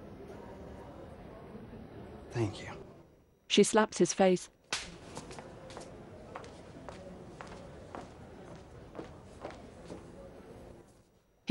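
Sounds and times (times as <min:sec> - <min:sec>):
speech: 0:02.3 - 0:02.8, 0:03.5 - 0:04.6
footsteps of a man walking away: 0:04.8 - 0:10.1.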